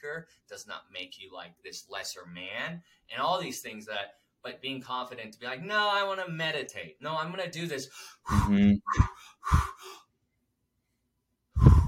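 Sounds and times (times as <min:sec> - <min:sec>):
speech: 0:00.0 - 0:10.0
rapid forceful breaths in a breathing exercise: 0:08.0 - 0:10.0, 0:11.6 - 0:11.8.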